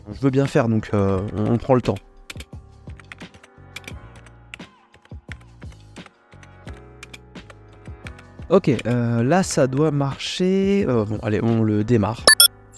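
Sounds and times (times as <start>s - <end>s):
speech: 0.1s - 2.1s, 8.5s - 12.4s
rapid typing on a computer keyboard: 1.0s - 1.5s, 3.0s - 4.3s, 4.9s - 8.2s.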